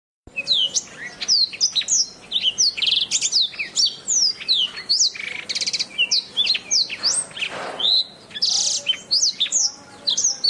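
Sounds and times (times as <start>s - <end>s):
Oriental magpie-robin song: 0.3s - 10.4s.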